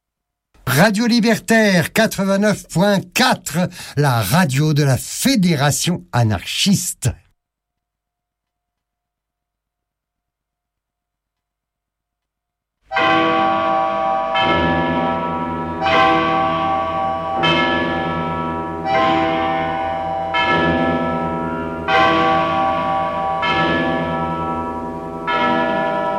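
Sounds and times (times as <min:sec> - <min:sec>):
speech: 0:00.7 - 0:07.2
large church bell tolling: 0:12.9 - 0:26.1.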